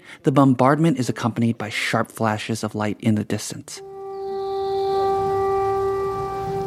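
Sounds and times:
speech: 0.1s - 3.9s
air raid sirens wailing outside: 3.8s - 6.6s.

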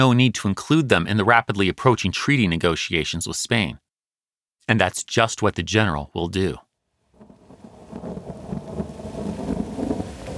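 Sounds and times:
speech: 0.0s - 3.8s, 4.7s - 6.7s
gusting wind in Manila: 7.0s - 10.3s
heavy rain in Manila: 7.1s - 10.3s
low rumbling swells: 7.2s - 10.3s.

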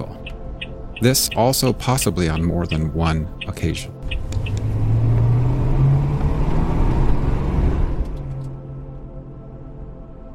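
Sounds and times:
speech: 1.0s - 4.6s
car engine rumbling while rolling slowly through a trailer court: 4.0s - 8.8s.

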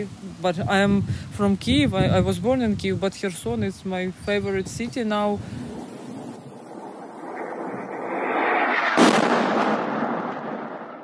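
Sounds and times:
speech: 0.0s - 5.7s
low rumble of explosion: 5.5s - 11.0s
explosion in Kherson: 5.7s - 11.0s.

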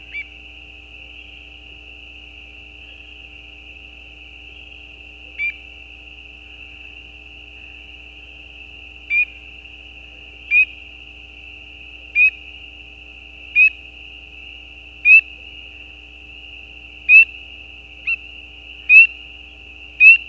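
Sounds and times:
spring peeper frogs giving mating calls beside a gravel road at night: 9.1s - 9.4s, 10.5s - 10.8s, 12.1s - 12.4s, 13.5s - 13.8s, 15.0s - 15.4s, 17.0s - 17.4s, 18.0s - 19.2s, 20.0s - 20.2s.

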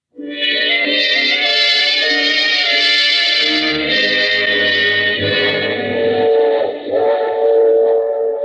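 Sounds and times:
sustained whistle-like tones from a running train: 0.2s - 8.4s
train running along the tracks: 4.6s - 8.4s.

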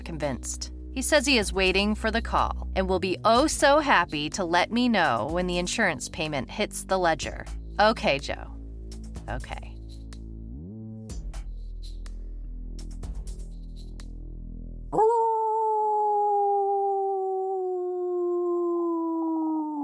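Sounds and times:
speech: 0.1s - 8.5s, 9.3s - 9.7s
wolf howling: 15.0s - 19.8s.

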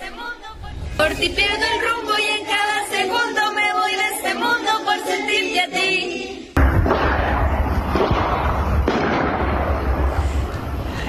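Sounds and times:
voices singing a steady tune: 0.0s - 6.6s
speech: 1.0s - 1.8s
loud dense gunfire from a shootout: 6.6s - 10.8s.

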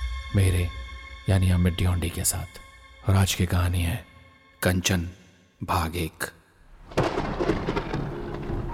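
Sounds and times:
speech: 0.3s - 7.8s
thunderclap during a lightning storm: 6.7s - 8.7s.

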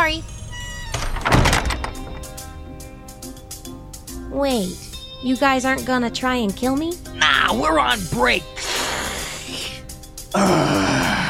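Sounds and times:
door rattling and scraping as it settles: 0.7s - 2.4s
door pushed shut with a solid thunk: 0.8s - 2.3s
speech: 4.4s - 8.6s, 10.3s - 10.8s.

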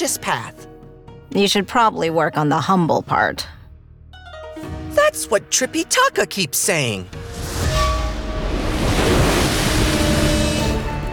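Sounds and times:
speech: 0.0s - 0.7s, 1.3s - 3.6s, 5.1s - 7.4s
ocean waves surging: 7.6s - 11.1s.

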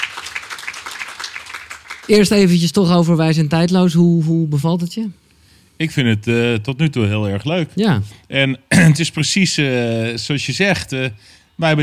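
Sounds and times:
audience applause: 0.0s - 2.6s
speech: 2.1s - 5.2s, 5.8s - 11.8s.

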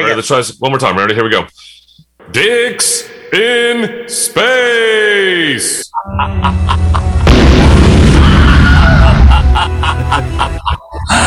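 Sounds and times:
speech: 0.0s - 7.8s, 8.9s - 11.2s
laughter: 5.9s - 7.3s, 8.6s - 11.2s
explosion sound effect: 7.2s - 9.5s.

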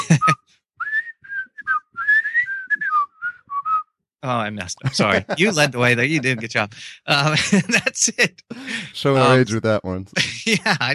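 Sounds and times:
laughter: 0.0s - 0.4s, 4.6s - 10.9s
person whistling an upbeat TV theme melody: 0.0s - 4.0s
speech: 4.2s - 10.9s
breathy burst: 6.7s - 7.1s, 8.5s - 9.1s.

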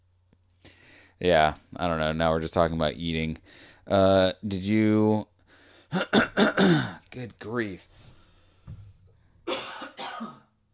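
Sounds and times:
speech: 1.2s - 5.3s, 5.9s - 8.1s
person coughing: 5.9s - 7.0s, 9.5s - 10.5s.

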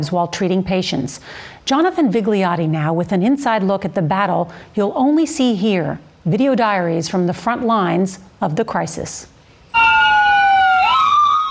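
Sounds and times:
speech: 0.0s - 9.8s
emergency vehicle siren wailing: 9.7s - 11.4s.

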